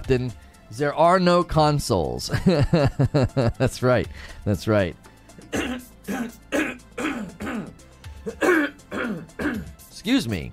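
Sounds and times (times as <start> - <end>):
speech: 0.1 - 6.4, 10.1 - 10.5
laughter: 2.3 - 3.8
person clearing throat with a tiny hiccup-like catch: 5.4 - 9.8.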